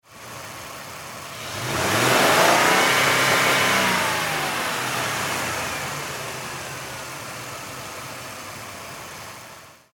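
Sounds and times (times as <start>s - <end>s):
Mercury Sable car engine revving high: 1.3s - 7.2s.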